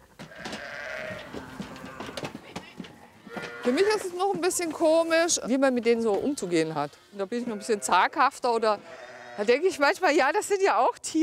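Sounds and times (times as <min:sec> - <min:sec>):
sheep and lambs bleating inside a barn: 0:00.3 - 0:02.3, 0:03.2 - 0:04.3, 0:05.9 - 0:10.1
speech: 0:03.6 - 0:11.2.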